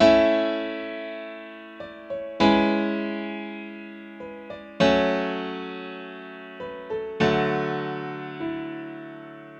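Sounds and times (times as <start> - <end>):
grand piano playing in F sharp minor at 100 BPM: 0.0 - 9.5.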